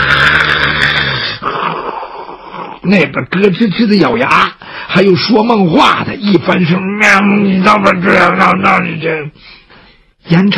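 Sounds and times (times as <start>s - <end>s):
voice imitating snoring of cart drivers asleep on a shared bunk: 0.0s - 2.9s
speech: 2.8s - 9.6s, 10.2s - 10.5s.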